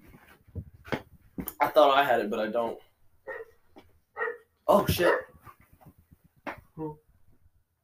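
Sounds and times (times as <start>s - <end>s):
speech: 1.6s - 2.9s, 4.7s - 5.3s, 6.8s - 7.0s
dog barking and whimpering outside: 3.3s - 3.6s, 4.2s - 5.4s.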